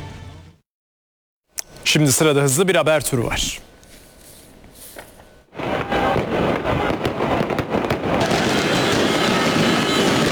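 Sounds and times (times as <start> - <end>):
speech: 1.9 - 3.7
fireworks exploding outdoors in celebration: 5.5 - 10.3.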